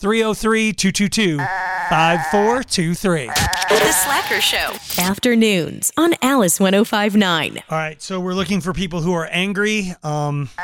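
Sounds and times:
speech: 0.0 - 10.6
goat bleating: 1.4 - 2.6, 3.3 - 4.8.

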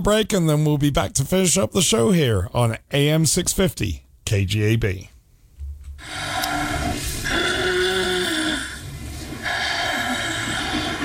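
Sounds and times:
speech: 0.0 - 5.1
long rasping snores: 6.0 - 11.0.

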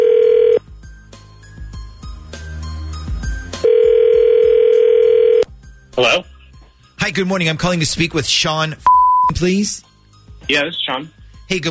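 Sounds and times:
loud steady telephone dial tone: 0.0 - 0.6, 3.6 - 5.5
speech: 7.2 - 9.9, 10.5 - 11.6.

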